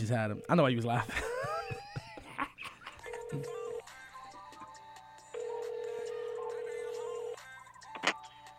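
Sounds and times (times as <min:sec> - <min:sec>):
speech: 0:00.0 - 0:01.3, 0:03.3 - 0:03.6
laughter: 0:01.0 - 0:03.1
phone ringback tone: 0:03.1 - 0:03.9, 0:05.2 - 0:08.2.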